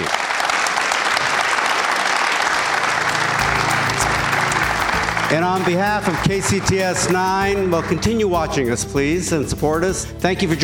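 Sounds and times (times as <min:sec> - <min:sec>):
sizable audience clapping: 0:00.0 - 0:08.2
speech: 0:05.3 - 0:10.6.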